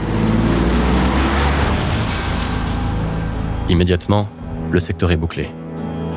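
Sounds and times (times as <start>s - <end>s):
car engine accelerating: 0.0s - 3.7s
road noise: 0.0s - 4.8s
speech: 3.7s - 5.6s.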